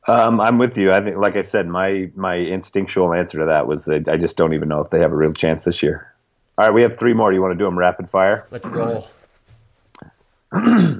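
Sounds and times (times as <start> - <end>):
speech: 0.1 - 9.2, 10.5 - 10.9
loud harsh throat clearing: 8.5 - 9.2, 10.5 - 10.9.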